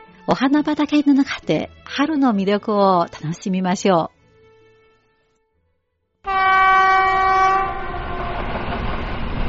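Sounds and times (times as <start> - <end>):
speech: 0.3 - 4.1
train horn blaring: 6.2 - 8.8
train rumbling and rattling along the tracks: 6.3 - 9.4.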